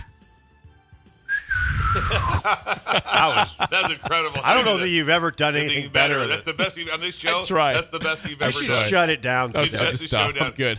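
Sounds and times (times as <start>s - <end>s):
person whistling imitating a whistling football in flight: 1.3s - 2.4s
laughter: 1.8s - 10.7s
speech: 2.0s - 10.7s.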